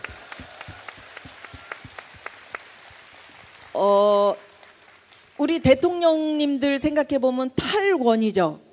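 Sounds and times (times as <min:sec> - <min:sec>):
audience applause: 0:00.0 - 0:03.8
speech: 0:03.8 - 0:04.4, 0:05.4 - 0:08.6.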